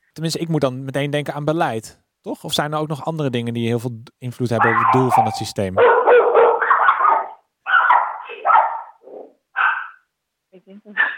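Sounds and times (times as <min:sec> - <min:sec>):
speech: 0:00.2 - 0:06.0
dog barking: 0:04.6 - 0:10.1, 0:11.0 - 0:11.1.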